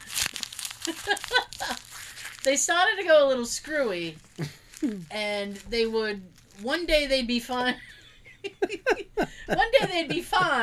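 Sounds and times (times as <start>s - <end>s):
paper being crumpled up: 0.0s - 2.6s, 4.0s - 7.1s
speech: 0.8s - 10.6s
laughter: 7.9s - 10.6s.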